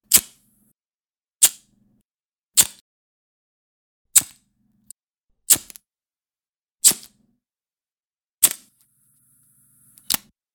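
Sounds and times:
plastic lighter: 0:01.4 - 0:01.6, 0:02.6 - 0:02.8, 0:05.5 - 0:05.8, 0:06.8 - 0:07.1, 0:08.4 - 0:08.8, 0:09.9 - 0:10.4.

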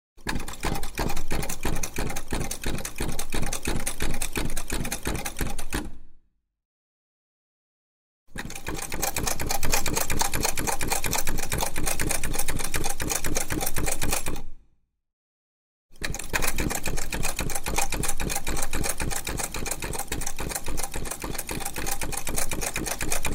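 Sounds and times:
old treadle sewing machine for clothes: 0:00.2 - 0:05.7, 0:08.3 - 0:14.4, 0:16.0 - 0:23.3.

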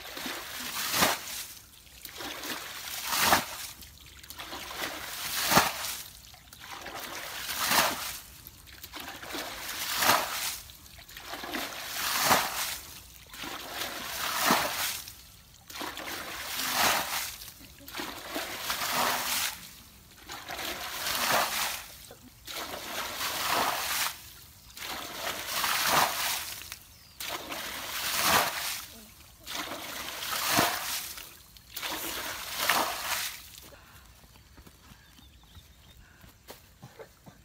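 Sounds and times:
water splashing in the old days: 0:00.0 - 0:33.7.

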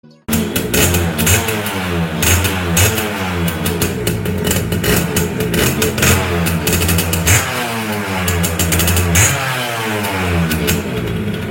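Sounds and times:
motorbike engine: 0:00.3 - 0:11.4.

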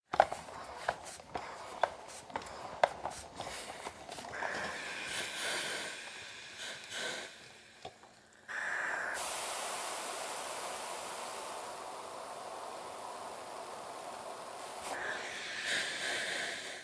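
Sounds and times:
clothes iron ironing clothes: 0:00.0 - 0:16.8.

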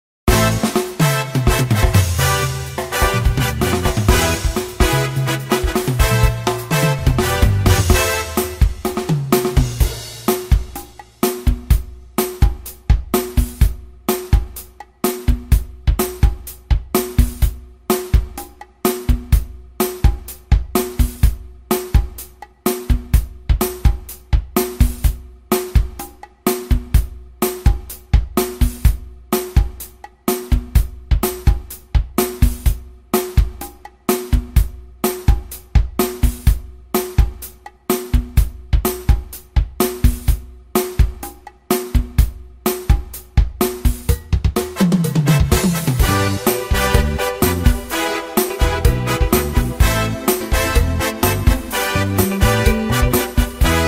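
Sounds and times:
cha cha cha music: 0:00.3 - 0:53.8.

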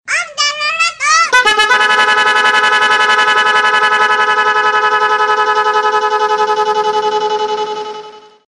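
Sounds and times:
bus horn melody: 0:01.3 - 0:08.4.

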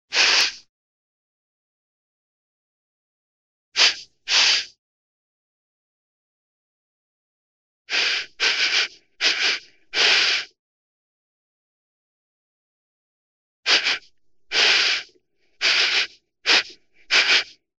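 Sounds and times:
sniffing through the nose: 0:00.1 - 0:00.7, 0:03.8 - 0:04.8, 0:07.9 - 0:10.6, 0:13.7 - 0:17.6.

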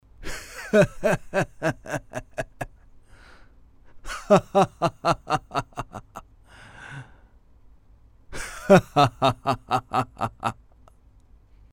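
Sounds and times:
kindly laughter of an elderly man: 0:00.2 - 0:03.0, 0:03.9 - 0:06.3, 0:08.3 - 0:10.7.

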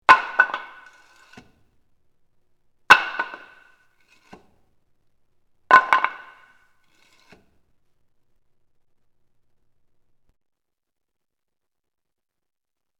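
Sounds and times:
wooden stick thrown onto the ground: 0:00.0 - 0:01.6, 0:02.9 - 0:04.6, 0:05.7 - 0:07.6.

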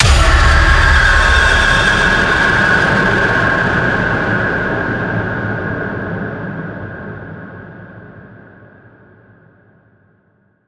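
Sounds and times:
long echoing eerie boom: 0:00.0 - 0:06.8.

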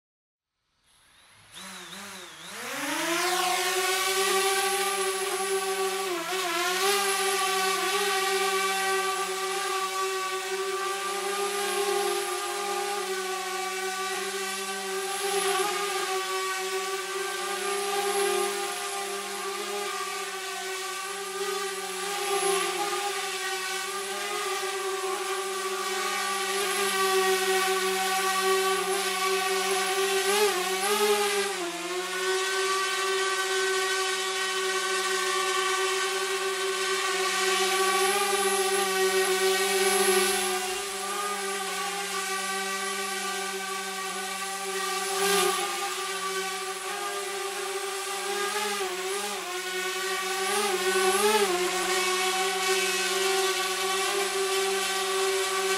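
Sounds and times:
camera drone flying: 0:00.8 - 0:55.7.

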